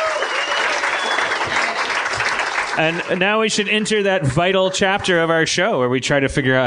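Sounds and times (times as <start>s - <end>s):
audience applause: 0.0s - 3.8s
speech: 2.8s - 6.6s.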